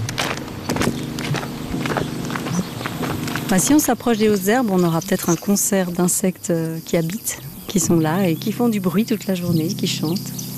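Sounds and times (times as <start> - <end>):
footsteps walking through a garden: 0.0 - 6.0
steady rumble: 0.0 - 10.5
speech: 3.5 - 10.5.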